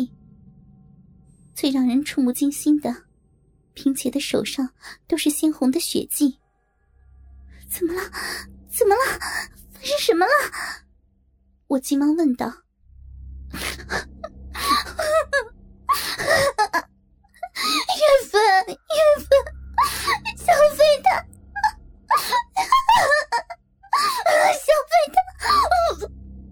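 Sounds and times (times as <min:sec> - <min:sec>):
speech: 0:01.6 - 0:03.1, 0:03.8 - 0:06.4, 0:07.7 - 0:10.8, 0:11.7 - 0:12.6
woman crying and wailing loudly with gasping sobs: 0:13.6 - 0:16.8, 0:17.4 - 0:26.1.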